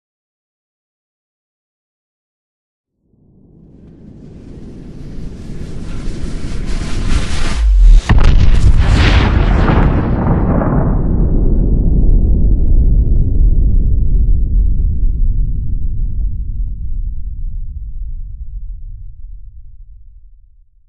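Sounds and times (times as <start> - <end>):
nuclear explosion shockwave in war ambience: 3.7 - 20.4.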